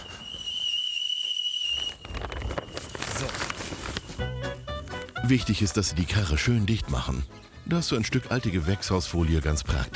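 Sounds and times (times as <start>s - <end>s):
steam kettle whistling: 0.0s - 5.2s
speech: 5.3s - 9.9s.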